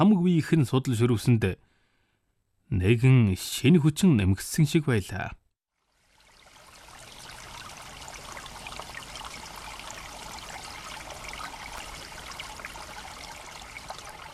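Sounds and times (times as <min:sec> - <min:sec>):
speech: 0:00.0 - 0:01.7, 0:02.7 - 0:05.4
small brook gurgling beside a road: 0:05.8 - 0:14.3.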